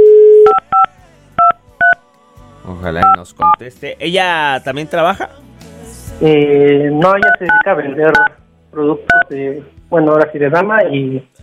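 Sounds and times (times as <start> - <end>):
short dual-pitched telephone keypad beeps while redialing a call: 0.0 - 2.0, 3.0 - 3.6, 7.2 - 8.3
steady telephone dial tone: 0.0 - 2.0
speech: 2.8 - 5.4, 6.2 - 11.4.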